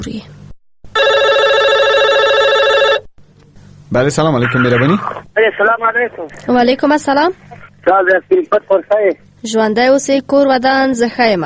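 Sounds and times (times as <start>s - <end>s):
speech: 0.0s - 0.4s, 3.9s - 11.4s
telephone ringing for an incoming listener call: 1.0s - 3.1s.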